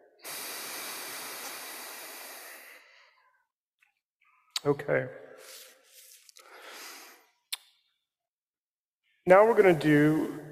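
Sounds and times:
alternate nostril breathing, inhale and exhale: 0:00.1 - 0:03.5, 0:05.4 - 0:07.4
speech: 0:04.6 - 0:05.6, 0:09.3 - 0:10.4.

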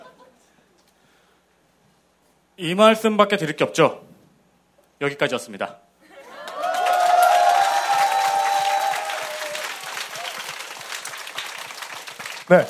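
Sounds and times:
speech: 0:02.6 - 0:04.1, 0:05.0 - 0:05.8, 0:12.5 - 0:12.6
people whooping: 0:06.1 - 0:11.0
audience clapping: 0:06.3 - 0:12.6.

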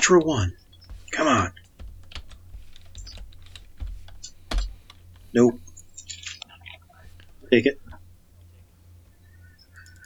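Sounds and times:
typing on a computer keyboard: 0:00.0 - 0:05.3
speech: 0:00.1 - 0:01.6, 0:05.3 - 0:05.6, 0:07.5 - 0:07.8.

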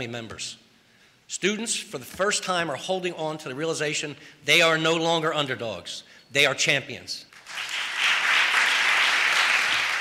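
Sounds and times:
speech: 0:00.0 - 0:00.6, 0:01.3 - 0:07.8
council members applauding: 0:07.3 - 0:09.9.

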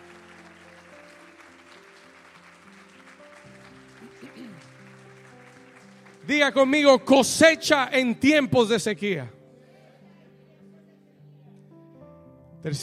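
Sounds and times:
crowd clapping: 0:00.0 - 0:07.5
speech: 0:06.3 - 0:09.4, 0:12.6 - 0:12.8.

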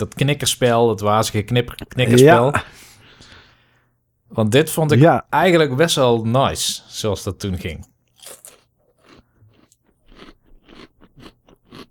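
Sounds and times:
speech: 0:00.0 - 0:02.9, 0:04.3 - 0:08.4
crisp food being chewed: 0:08.2 - 0:11.9.

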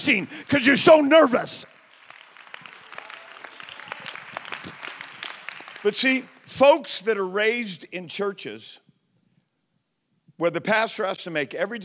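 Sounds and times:
speech: 0:00.0 - 0:01.7, 0:05.8 - 0:08.8, 0:10.4 - 0:11.8
crowd of many hands clapping: 0:00.0 - 0:06.6
sharper individual claps: 0:01.7 - 0:06.5.

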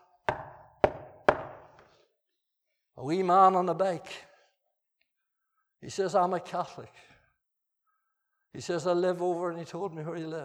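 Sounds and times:
firm knocking on a door: 0:00.3 - 0:01.8
speech: 0:03.0 - 0:04.3, 0:05.8 - 0:07.1, 0:08.5 - 0:10.4.

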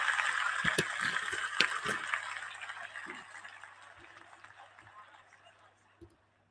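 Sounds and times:
water pouring into a glass: 0:00.1 - 0:03.5.

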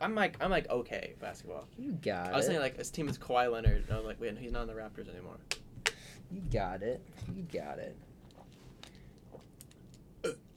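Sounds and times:
speech: 0:00.0 - 0:08.1
quiet room noise: 0:00.0 - 0:10.5
short burp: 0:10.2 - 0:10.5.

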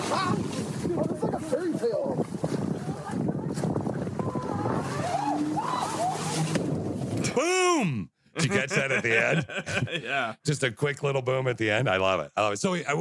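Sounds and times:
rushing wind: 0:00.0 - 0:07.4
motorboat engine roaring as it zooms toward a dock: 0:02.3 - 0:07.3
laughter: 0:08.4 - 0:10.4
speech: 0:08.4 - 0:12.9.

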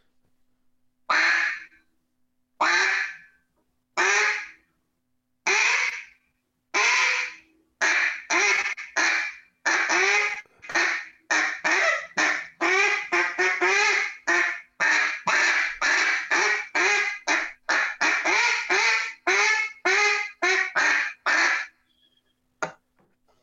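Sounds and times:
duck call blown in quacks from low to high: 0:01.1 - 0:01.8, 0:02.6 - 0:03.3, 0:04.0 - 0:04.6, 0:05.5 - 0:06.2, 0:06.8 - 0:21.8.

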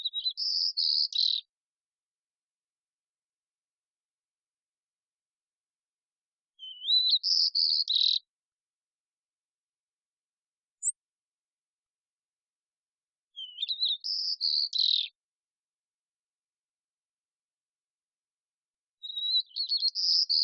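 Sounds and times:
immature White-crowned sparrow singing, Zonotrichia leucophrys: 0:00.0 - 0:01.5, 0:06.6 - 0:08.3, 0:13.4 - 0:15.2, 0:19.0 - 0:20.4.

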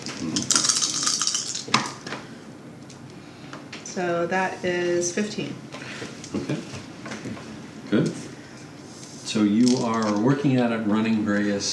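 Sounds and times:
three dice rolled across a hard tabletop in a game: 0:00.4 - 0:01.9, 0:09.6 - 0:10.3
speech: 0:04.0 - 0:05.7, 0:09.4 - 0:11.7.

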